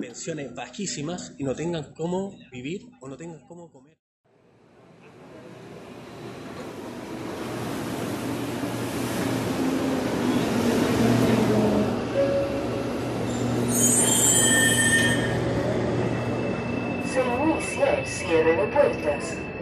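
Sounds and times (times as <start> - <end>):
speech: 0.0 - 4.0, 17.7 - 19.5
subway train rumbling through station: 4.3 - 19.6
subway train wheels letting out shrill metallic squeals: 13.1 - 18.6.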